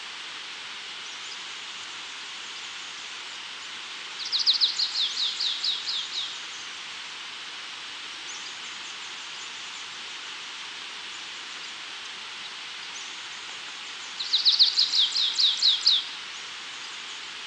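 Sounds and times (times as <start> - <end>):
background hiss: 0.0 - 17.4
Stripe-tailed Yellow Finch Sicalis citrina citrina calling: 4.2 - 6.3, 14.2 - 16.1.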